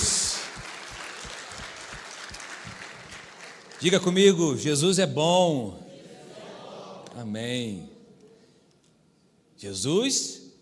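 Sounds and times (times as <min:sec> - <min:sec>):
congregation applauding during a service in a Methodist cathedral church: 0:00.0 - 0:04.6
speech: 0:03.8 - 0:05.8, 0:07.2 - 0:08.0, 0:09.6 - 0:10.4.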